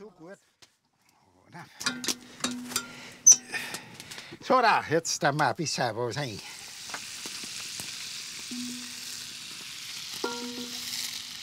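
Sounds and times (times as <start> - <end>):
speech: 0.2 - 0.7, 1.5 - 2.9, 4.3 - 6.6
onions frying in butter in a pan: 6.1 - 11.4.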